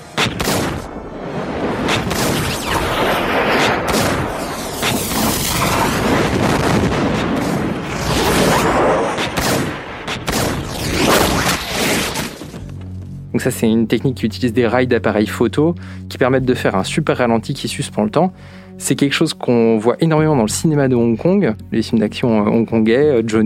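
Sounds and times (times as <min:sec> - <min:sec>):
gunfire in a film action scene: 0:00.0 - 0:00.9, 0:01.8 - 0:12.1
heavy booms: 0:00.2 - 0:12.3
speech: 0:13.4 - 0:23.4.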